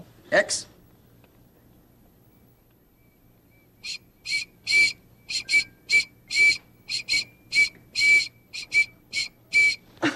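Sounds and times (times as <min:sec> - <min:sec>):
speech: 0:00.3 - 0:00.7
whistle blown in shrill breathy toots: 0:03.0 - 0:09.9.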